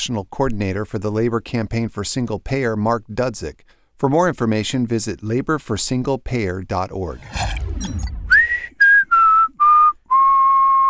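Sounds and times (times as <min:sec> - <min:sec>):
speech: 0:00.0 - 0:08.1
person whistling a short tune as show intro: 0:08.3 - 0:10.8.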